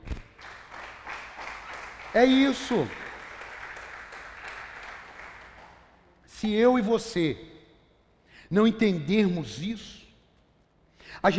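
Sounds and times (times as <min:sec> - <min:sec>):
audience applauding: 0:00.0 - 0:06.2
speech: 0:02.2 - 0:03.0, 0:06.4 - 0:07.5, 0:08.5 - 0:10.0, 0:11.2 - 0:11.3.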